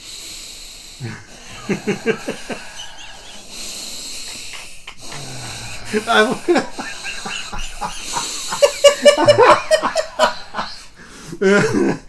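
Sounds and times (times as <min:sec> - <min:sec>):
voice imitating heavy breathing with huffs and gasps: 0:00.0 - 0:12.0
speech: 0:01.0 - 0:02.7, 0:05.9 - 0:06.8, 0:07.8 - 0:08.2, 0:09.0 - 0:10.3, 0:11.4 - 0:12.0
bursts of laughter: 0:01.0 - 0:03.6, 0:04.2 - 0:12.0.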